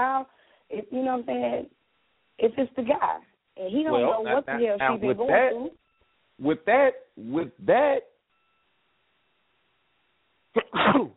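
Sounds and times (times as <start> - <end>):
speech: 0.0 - 1.8, 2.4 - 5.8, 6.4 - 8.1, 10.6 - 11.1
single loud sneeze: 10.6 - 11.1.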